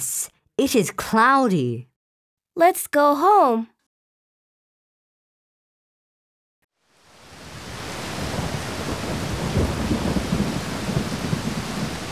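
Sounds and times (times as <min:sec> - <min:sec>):
speech: 0:00.0 - 0:01.9, 0:02.6 - 0:03.7
heavy rain pouring: 0:06.9 - 0:12.1.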